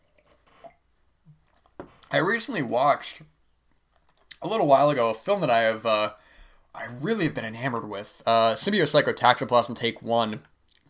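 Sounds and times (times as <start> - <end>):
person sipping coffee: 0.0 - 2.1
speech: 2.1 - 3.3, 4.4 - 10.8.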